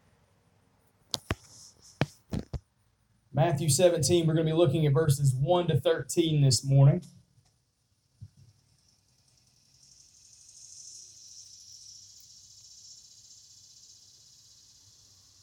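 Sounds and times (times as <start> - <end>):
speech: 3.4 - 7.2
cicadas buzzing outdoors in the morning: 8.0 - 15.4.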